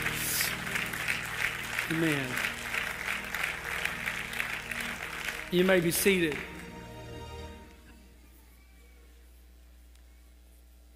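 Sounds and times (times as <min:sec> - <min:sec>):
crowd clapping: 0:00.0 - 0:07.8
speech: 0:01.9 - 0:02.5, 0:05.5 - 0:06.6.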